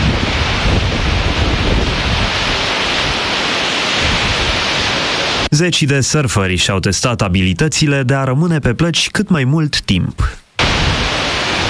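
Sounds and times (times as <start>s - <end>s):
strong gusting wind rumbling across the microphone: 0.0s - 5.5s, 10.6s - 11.6s
sea waves crashing: 0.0s - 5.7s, 10.6s - 11.6s
speech: 5.5s - 10.4s.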